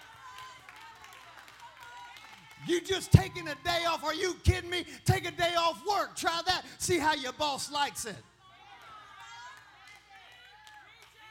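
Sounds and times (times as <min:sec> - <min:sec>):
scattered hand claps from a few people: 0:00.0 - 0:03.2, 0:09.2 - 0:11.3
speech: 0:02.6 - 0:08.3.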